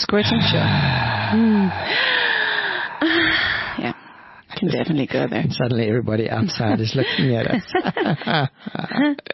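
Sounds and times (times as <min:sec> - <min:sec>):
speech: 0:00.1 - 0:02.0, 0:04.6 - 0:09.3
gasping, partly voiced moaning: 0:00.1 - 0:04.3
heavy exaggerated breathing: 0:00.2 - 0:04.5.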